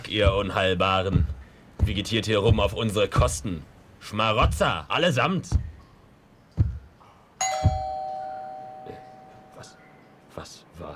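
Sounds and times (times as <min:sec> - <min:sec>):
speech: 0:00.1 - 0:05.7
dull thuds: 0:00.2 - 0:03.4, 0:05.5 - 0:05.8, 0:07.5 - 0:08.2
doorbell chime: 0:07.4 - 0:10.2.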